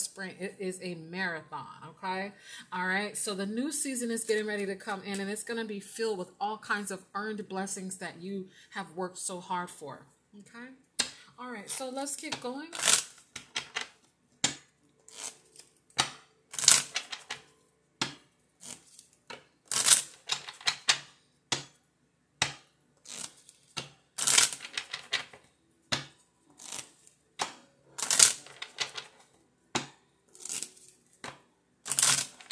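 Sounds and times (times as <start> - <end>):
speech: 0.2 - 10.8, 11.4 - 13.0
deck of playing cards being shuffled: 12.7 - 14.0, 15.1 - 17.4, 18.1 - 21.6, 23.0 - 32.5.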